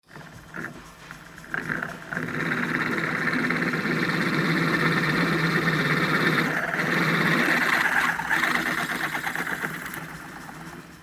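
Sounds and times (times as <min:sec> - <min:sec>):
drilling in a car workshop: 0:00.0 - 0:11.0.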